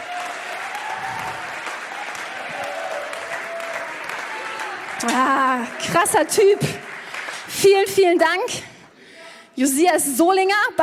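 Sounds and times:
faint audience whoops and cheers: 0.0 - 6.9
applause from a large audience: 0.0 - 7.6
speech: 5.0 - 6.9, 7.5 - 8.7, 9.6 - 10.8.

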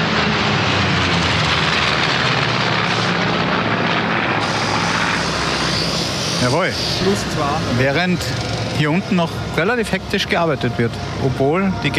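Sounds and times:
Alpha Jet military jet roaring overhead above a festival main stage forecourt: 0.0 - 11.9
speech: 6.5 - 11.9.

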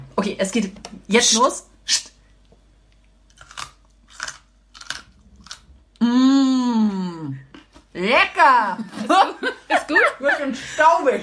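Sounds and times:
speech: 0.2 - 2.1, 8.4 - 11.2
crunchy snack being nibbled and chewed during a blindfolded taste test: 3.0 - 6.0
person making a loud drawn-out vocal sound falling in pitch: 6.0 - 7.5.

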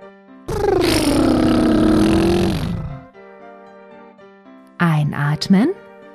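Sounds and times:
lip trill imitating a car engine during a breathing exercise: 0.5 - 3.0
speech: 5.4 - 5.8.

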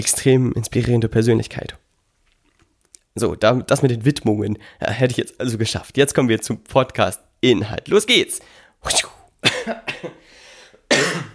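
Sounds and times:
speech: 0.0 - 1.8, 3.2 - 10.2
person coughing deliberately: 8.9 - 10.3, 10.9 - 11.3.

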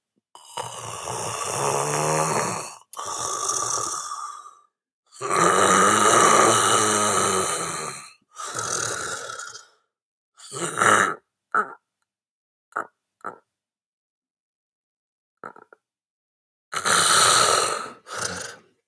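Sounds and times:
person imitating snoring as the tongue falls back into the throat: 0.4 - 11.8, 15.4 - 15.8, 16.7 - 18.8.

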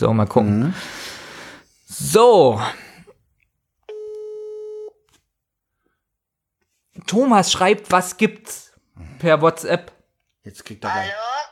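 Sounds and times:
speech: 0.0 - 1.0, 1.9 - 2.8, 7.0 - 11.3
telephone ringback tone while calling someone: 3.9 - 4.9.

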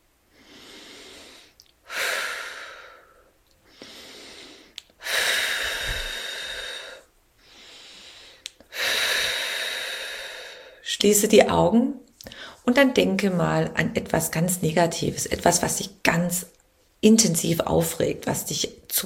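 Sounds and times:
deep breathing in and out: 0.3 - 10.8
speech: 11.0 - 12.0, 12.7 - 19.0.

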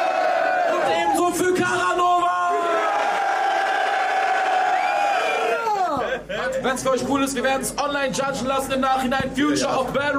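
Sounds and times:
crowd cheering and shouting: 0.0 - 6.1
speech: 6.6 - 10.1.

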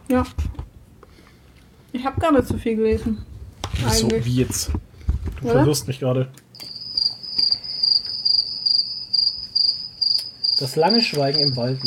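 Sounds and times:
speech: 0.1 - 0.5, 1.9 - 6.4, 10.6 - 11.8
cricket chirping: 6.6 - 11.8.

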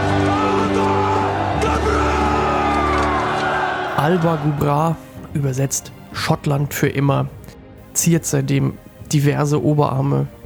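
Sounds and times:
crowd of voices bellowing a battle cry: 0.0 - 4.6
speech: 4.1 - 7.4, 8.0 - 10.4.

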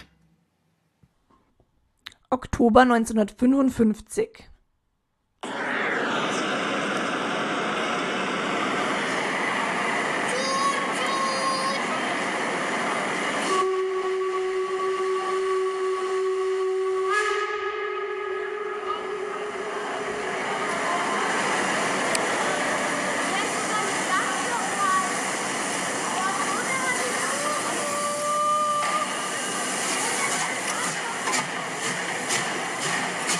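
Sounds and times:
speech: 2.3 - 4.5
steam train hissing steam: 5.4 - 33.3
steam train rolling into station: 5.4 - 33.3
steam train whistle blowing: 10.2 - 12.0, 13.2 - 21.3, 26.9 - 30.7.

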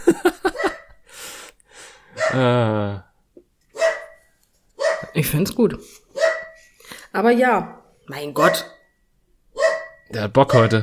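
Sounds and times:
laughter: 0.0 - 1.0
dog barking: 0.4 - 1.0, 2.2 - 2.5, 3.8 - 4.2, 4.8 - 5.2, 6.2 - 6.6, 8.4 - 8.9, 9.6 - 10.8
dog long drawn-out howling bark: 2.2 - 2.4, 3.8 - 4.1, 4.8 - 5.1, 6.2 - 6.6, 8.4 - 8.8, 9.6 - 10.8
speech: 2.3 - 3.1, 5.2 - 6.0, 7.1 - 8.8, 10.1 - 10.8.

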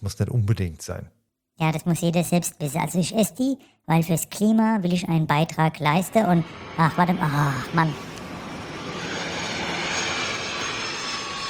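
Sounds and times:
speech: 0.0 - 8.1
private jet engine roar flying overhead: 5.8 - 11.4.

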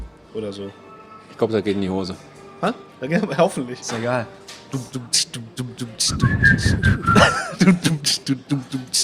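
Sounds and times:
speech: 0.4 - 9.0
steady rhythmic vocal beat: 4.7 - 9.0
short whistled melody: 6.1 - 7.4
breathy chuckling: 7.0 - 8.0.

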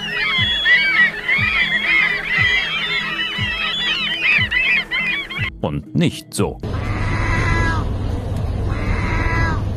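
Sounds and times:
dense chorus of gulls calling: 0.0 - 5.6, 6.7 - 7.9, 8.6 - 9.6
speech: 5.6 - 6.7.

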